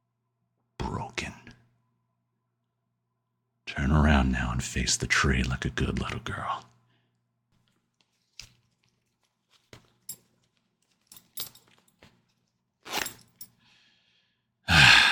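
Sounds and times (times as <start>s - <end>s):
speech: 3.8s - 6.7s
zipper being pulled: 12.8s - 13.5s.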